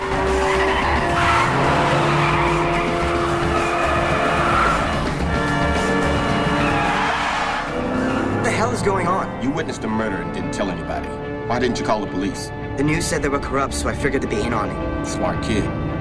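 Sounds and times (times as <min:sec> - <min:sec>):
car tires skidding and squealing: 0:00.0 - 0:08.8
car engine roaring loudly: 0:00.0 - 0:10.4
speech: 0:09.6 - 0:15.8.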